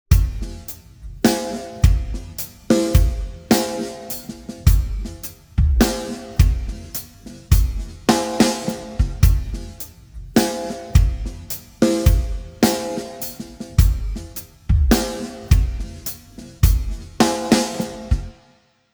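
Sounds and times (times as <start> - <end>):
time-stretched drums: 0.1 - 18.4.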